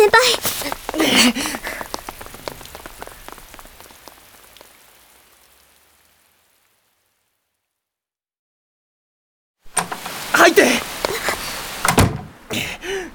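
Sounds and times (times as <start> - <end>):
heavy rain pouring down: 0.0 - 7.0, 9.7 - 13.1.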